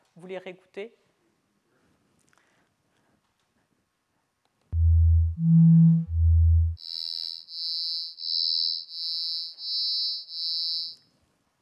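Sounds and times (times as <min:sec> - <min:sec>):
speech: 0:00.2 - 0:01.1, 0:05.4 - 0:05.9
high-pitched synthetic test beeps: 0:04.8 - 0:06.8
low synthetic test tones with and without phase modification: 0:04.8 - 0:06.8.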